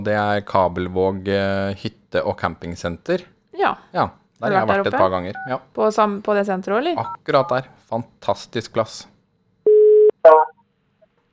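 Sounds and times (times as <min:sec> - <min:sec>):
speech: 0:00.0 - 0:09.1, 0:10.2 - 0:10.6
telephone ringing tone while placing a call: 0:09.7 - 0:10.5.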